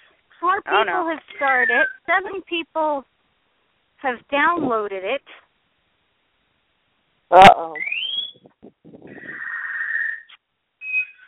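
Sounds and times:
speech: 0.4 - 3.1, 4.0 - 5.4, 7.3 - 8.5
pet bird squawking, chirping and whistling: 1.3 - 2.2, 7.8 - 8.5, 9.1 - 11.2.

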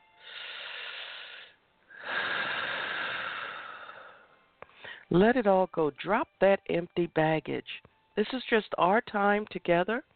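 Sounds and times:
slow airy breaths during a guided breathing exercise: 0.1 - 5.1
speech: 5.1 - 10.1.

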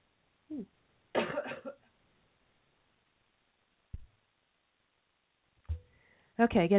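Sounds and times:
speech: 0.5 - 0.8, 6.4 - 6.7
throat clearing: 0.5 - 1.8
person coughing: 1.2 - 1.8.

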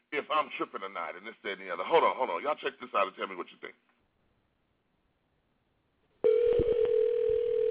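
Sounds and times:
speech: 0.3 - 3.9
electronic telephone ringing tone for a call to a car wash: 6.2 - 7.6.

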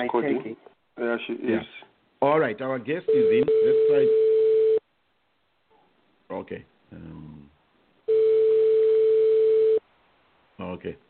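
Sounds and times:
speech: 0.0 - 4.3, 6.3 - 7.5, 10.6 - 11.0
ringback tone on a telephone line on an outgoing call: 3.1 - 4.8, 8.1 - 9.8.

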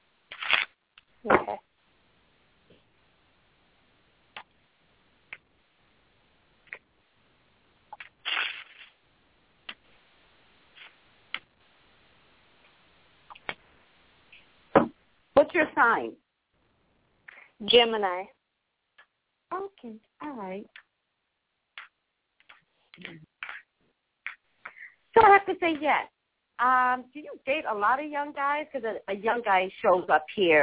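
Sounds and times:
tarot cards being shuffled: 0.3 - 0.7, 8.0 - 9.0
speech: 15.6 - 16.2, 17.6 - 18.4, 19.5 - 20.8, 23.0 - 23.3, 25.2 - 30.6.

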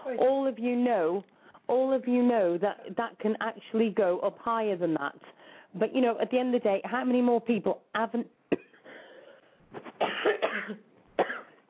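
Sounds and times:
speech: 0.2 - 8.6, 9.8 - 10.9
dry coughing from a tickle in the throat: 9.8 - 11.6.

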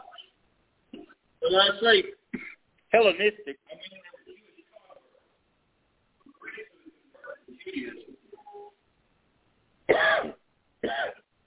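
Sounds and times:
speech: 1.5 - 2.2, 2.9 - 3.8
person letting out loud harsh coughs: 2.3 - 2.6, 9.9 - 11.3
person making soft murmuring vocal sounds: 6.3 - 8.6.

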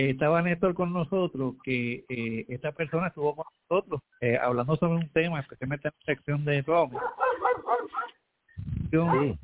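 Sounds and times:
speech: 0.0 - 9.4
dog barking in short, rhythmic yelping barks: 6.9 - 8.2, 9.1 - 9.4.

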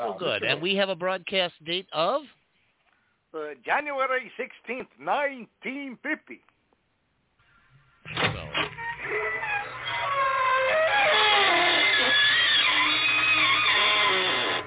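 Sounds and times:
speech: 0.0 - 2.4, 3.3 - 6.5, 8.1 - 9.6
door creaking slowly open: 8.0 - 14.6.

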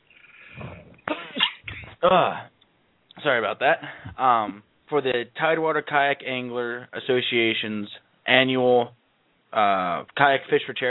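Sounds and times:
sneezing: 0.5 - 2.3
speech: 2.0 - 2.5, 3.2 - 10.8.

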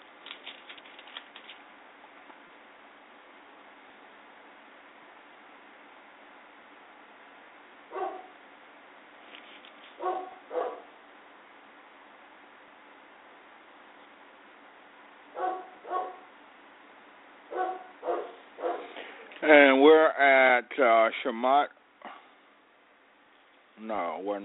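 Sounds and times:
faint steady hiss: 0.0 - 24.4
dog barking: 7.9 - 8.4, 10.0 - 11.0, 15.3 - 16.3, 17.5 - 19.0
speech: 19.4 - 21.8, 23.8 - 24.4.

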